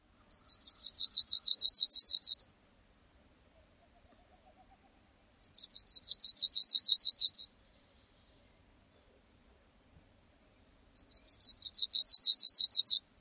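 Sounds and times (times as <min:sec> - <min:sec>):
palm warbler songs: 0:00.0 - 0:02.6, 0:03.5 - 0:13.1.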